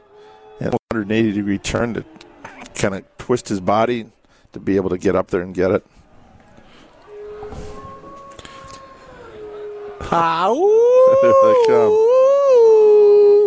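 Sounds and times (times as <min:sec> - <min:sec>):
speech: 0:00.6 - 0:02.2, 0:02.8 - 0:06.0, 0:10.1 - 0:12.0
weak thin wolf howl: 0:06.2 - 0:13.4.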